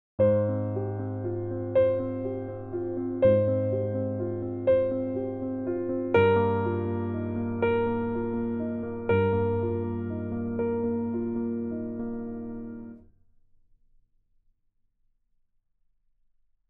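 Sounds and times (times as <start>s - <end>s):
piano arpeggios: 0.2s - 13.0s.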